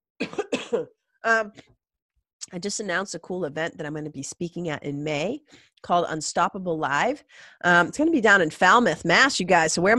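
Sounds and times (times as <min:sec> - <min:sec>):
rough coughs from a person with a stuffy nose: 0:00.2 - 0:01.0
speech: 0:00.7 - 0:01.8, 0:02.5 - 0:09.9.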